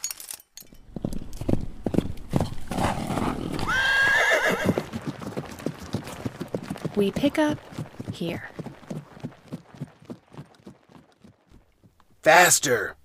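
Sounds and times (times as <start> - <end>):
horse hooves clip-clopping: 0.7 - 12.5
horse whinnying: 2.6 - 6.6
speech: 7.0 - 8.5, 12.3 - 13.0.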